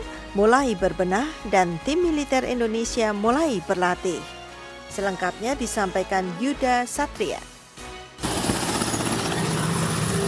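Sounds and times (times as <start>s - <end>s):
speech: 0.4s - 7.5s
Mi-17 military helicopter flying overhead: 8.2s - 10.2s.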